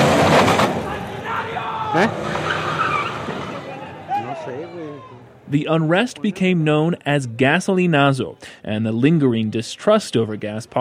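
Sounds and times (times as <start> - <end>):
protester's car engine roaring as it rams a police column: 0.0 - 4.1
tires screeching: 0.0 - 4.6
noisy chaotic crowd of rioters: 0.0 - 10.7
voices shouting: 0.7 - 6.5
speech: 1.9 - 2.4, 5.5 - 10.7.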